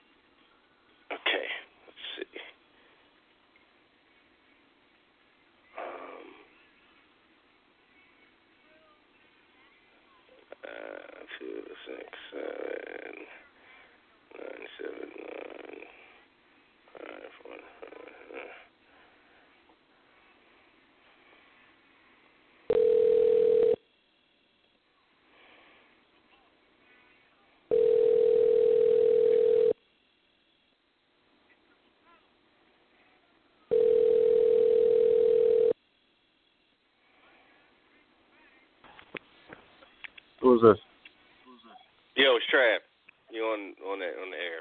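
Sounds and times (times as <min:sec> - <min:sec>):
telephone ringback tones on an outgoing call: 0:22.7 - 0:23.8, 0:27.7 - 0:29.8, 0:33.7 - 0:35.8
speech: 0:40.5 - 0:40.8, 0:42.4 - 0:42.8, 0:43.4 - 0:44.6.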